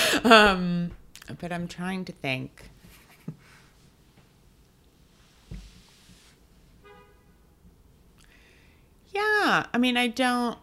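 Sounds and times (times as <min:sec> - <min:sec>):
speech: 0:00.2 - 0:02.7, 0:09.2 - 0:10.6
traffic noise: 0:06.7 - 0:08.2
car horn honking: 0:06.8 - 0:07.6.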